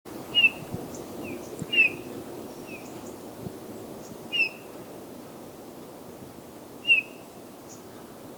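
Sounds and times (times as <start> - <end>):
low outdoor noise: 0.1 - 8.3
Eurasian bullfinch Pyrrhula pyrrhula piping whistles: 0.3 - 0.7, 1.7 - 2.0.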